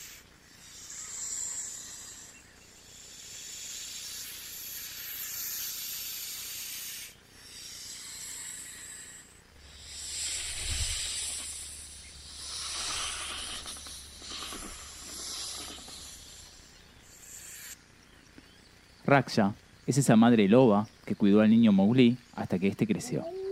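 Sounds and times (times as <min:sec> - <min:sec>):
snake hissing in long breathy waves: 0:00.0 - 0:17.8
speech: 0:19.1 - 0:23.4.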